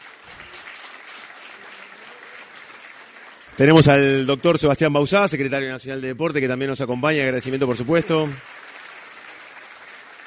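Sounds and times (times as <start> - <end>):
audience applause: 0.0 - 5.5, 6.5 - 10.2
speech: 3.6 - 8.5.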